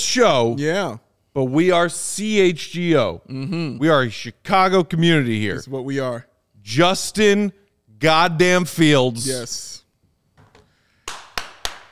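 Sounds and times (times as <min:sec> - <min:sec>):
speech: 0:00.1 - 0:09.8
hand claps: 0:11.0 - 0:11.9.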